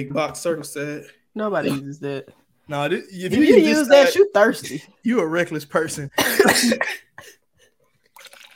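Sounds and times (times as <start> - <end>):
speech: 0.0 - 7.4
water being poured: 8.0 - 8.5.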